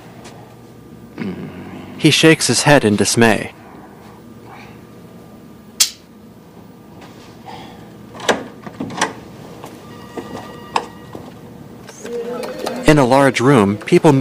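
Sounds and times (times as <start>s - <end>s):
speech: 2.0s - 3.6s, 13.0s - 14.1s
double doors clunking and rattling as they swing: 8.1s - 11.4s.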